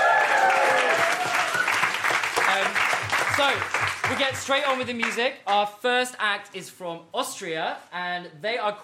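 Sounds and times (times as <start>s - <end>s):
people cheering and whooping: 0.0s - 2.0s
crowd applauding: 0.0s - 5.2s
speech: 3.4s - 8.8s.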